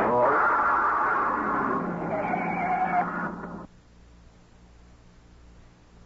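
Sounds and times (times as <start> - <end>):
car skidding off the road down an embankment after a front tire blowout: 0.2 - 3.3.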